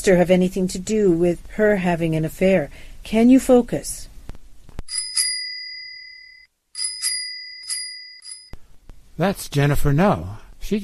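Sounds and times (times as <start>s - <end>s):
speech: 0.0s - 4.1s, 9.2s - 10.8s
bicycle bell ringing outside in a back lane: 4.9s - 8.6s.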